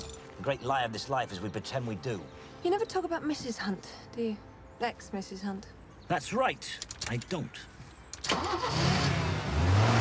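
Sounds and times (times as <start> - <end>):
speech: 0.4 - 7.7
car engine starting with a click and catch: 8.2 - 9.9.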